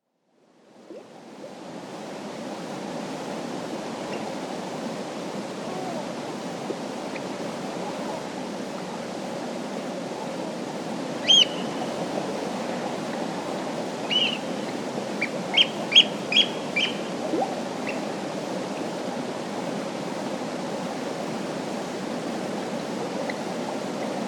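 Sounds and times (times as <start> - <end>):
wind at a lake at night in late spring: 0.0 - 24.2
oystercatcher calling at a lake at night in late spring: 11.2 - 11.6, 14.1 - 14.4, 15.5 - 17.0.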